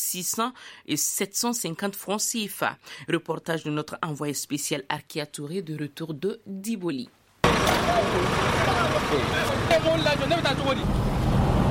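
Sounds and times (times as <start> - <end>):
speech: 0.0 - 11.4
truck and car engine noise among hundreds of parked trucks: 7.4 - 11.6.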